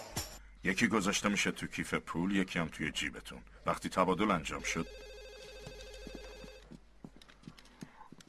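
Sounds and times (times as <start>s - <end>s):
speech: 0.7s - 5.1s
telephone ringing with an electronic warbling trilled tone: 4.6s - 6.7s.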